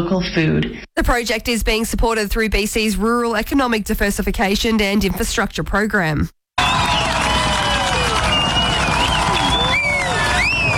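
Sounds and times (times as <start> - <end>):
speech: 0.0 - 6.4
crowd of hundreds cheering at a FIFA World Cup watch party in a lakeside park in Nelson: 6.6 - 10.7.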